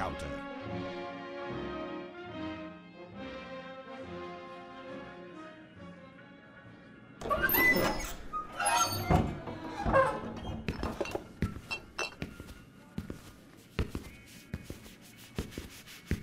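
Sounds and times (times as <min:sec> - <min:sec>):
soft tonal music: 0:00.0 - 0:16.2
saloon double doors swinging open: 0:07.2 - 0:12.2.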